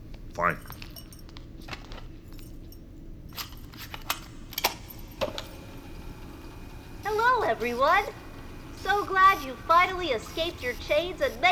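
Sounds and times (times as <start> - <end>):
speech: 0.4 - 0.8, 7.5 - 8.2, 8.8 - 11.5
cassette tape being put into a player: 3.8 - 6.6.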